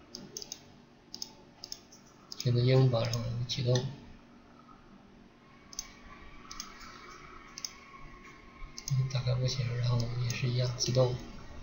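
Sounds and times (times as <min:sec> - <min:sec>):
soft steady hum: 0:00.0 - 0:11.6
computer mouse button clicking: 0:00.1 - 0:03.9, 0:05.7 - 0:07.9, 0:08.8 - 0:09.1, 0:09.9 - 0:11.0
speech: 0:02.4 - 0:04.0, 0:09.4 - 0:11.3.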